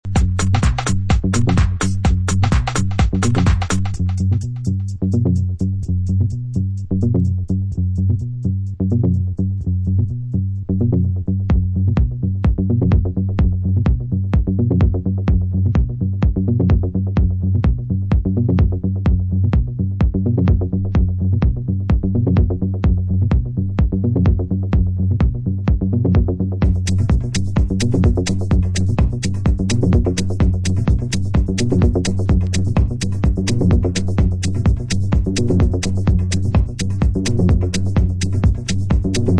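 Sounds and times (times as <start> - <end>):
bass mix: 0.0 - 39.3.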